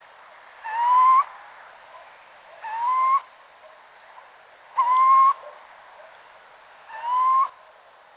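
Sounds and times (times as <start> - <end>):
light background hiss: 0.0 - 8.1
Little owl Athene noctua plaintive whistled upslurred calls: 0.6 - 1.3, 2.6 - 3.3, 4.8 - 5.4, 6.9 - 7.6.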